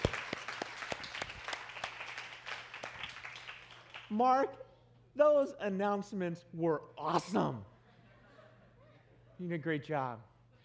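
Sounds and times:
church audience applause during a service: 0:00.0 - 0:04.1
speech: 0:04.1 - 0:04.6, 0:05.2 - 0:07.7, 0:09.4 - 0:10.3.

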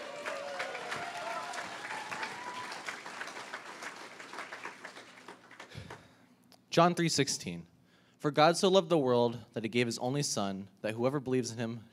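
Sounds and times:
crowd applauding a speaker: 0:00.0 - 0:06.1
speech: 0:06.8 - 0:11.9.

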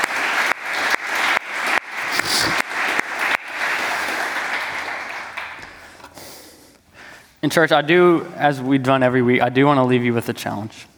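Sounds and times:
audience applauding: 0:00.0 - 0:06.4
speech: 0:07.4 - 0:10.9.

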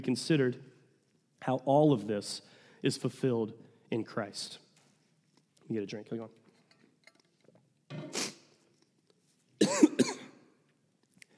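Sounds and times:
speech: 0:00.0 - 0:00.7, 0:01.4 - 0:04.6, 0:05.7 - 0:06.4
harsh raspy throaty cough: 0:09.6 - 0:10.5.

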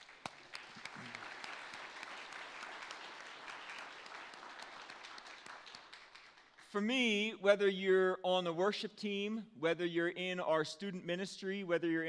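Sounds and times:
large audience applauding: 0:00.0 - 0:06.6
speech: 0:06.7 - 0:12.0.

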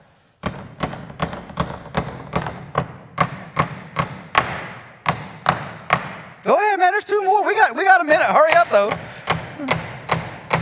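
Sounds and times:
framing hammer pounding big nails: 0:00.4 - 0:06.4, 0:08.3 - 0:10.6
speech: 0:06.4 - 0:09.8.

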